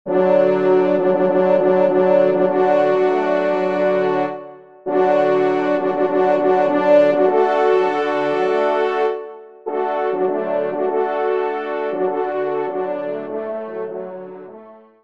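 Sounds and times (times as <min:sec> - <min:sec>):
grand fanfare on hunting horn: 0:00.1 - 0:15.0.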